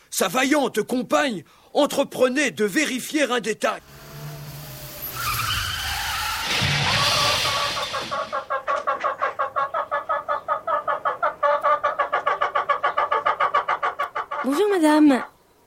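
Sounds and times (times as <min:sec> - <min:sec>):
speech: 0:00.1 - 0:04.0, 0:14.5 - 0:15.3
car skidding with tire screech: 0:03.8 - 0:08.5
harsh pulsing clucks or chatter: 0:06.1 - 0:14.7.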